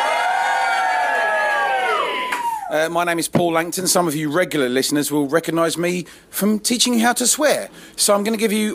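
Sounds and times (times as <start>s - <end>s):
live pub audience cheering and whooping: 0.0s - 2.8s
speech: 2.7s - 8.7s.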